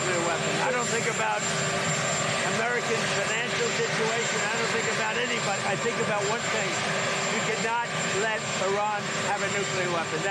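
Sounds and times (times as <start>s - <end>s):
helicopter rotor noise: 0.0s - 10.2s
speech: 2.9s - 10.2s.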